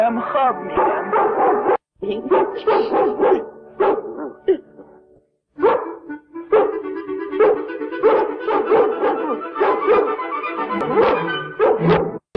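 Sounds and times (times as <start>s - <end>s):
speech: 0.1s - 1.2s, 2.1s - 3.4s
dogs barking and yipping: 0.7s - 4.5s, 5.6s - 6.8s, 7.4s - 10.2s, 10.8s - 12.2s.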